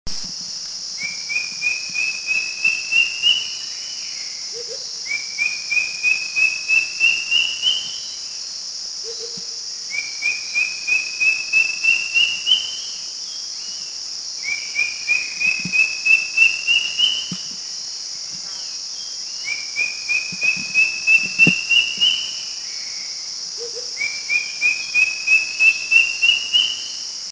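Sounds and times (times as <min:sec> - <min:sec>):
Philippine Drongo Cuckoo calling in the Philippines: 0:01.0 - 0:08.2, 0:09.0 - 0:12.9, 0:14.4 - 0:17.5, 0:19.4 - 0:22.5, 0:23.6 - 0:27.0.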